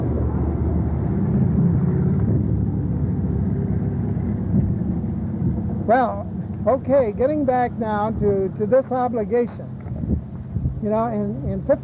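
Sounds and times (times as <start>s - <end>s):
bus rumbling past: 0.0s - 9.0s
speech: 5.9s - 9.8s, 10.8s - 11.8s.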